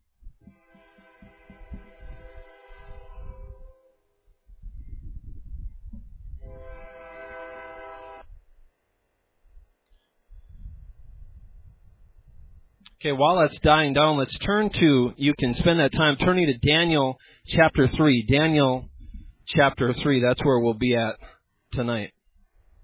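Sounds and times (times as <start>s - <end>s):
train horn blasts: 0.5s - 4.1s, 6.4s - 8.3s
speech: 13.0s - 18.9s, 19.5s - 22.2s.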